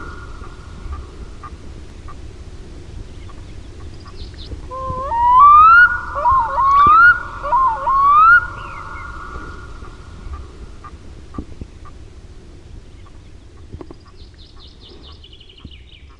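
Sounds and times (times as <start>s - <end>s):
black-throated loon calling with rising whistled phrases: 4.7s - 11.0s.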